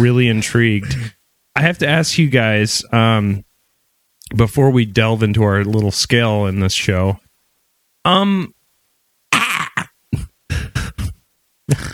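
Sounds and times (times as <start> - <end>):
speech: 0.0 - 3.5, 4.3 - 7.2, 8.0 - 8.6, 11.7 - 11.9
person clearing throat: 9.3 - 11.9.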